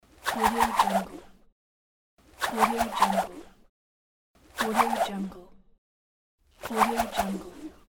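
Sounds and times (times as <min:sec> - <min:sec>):
cable swinging and spinning with a whirl: 0:00.0 - 0:01.4, 0:02.2 - 0:03.7, 0:04.4 - 0:05.3, 0:06.5 - 0:07.8.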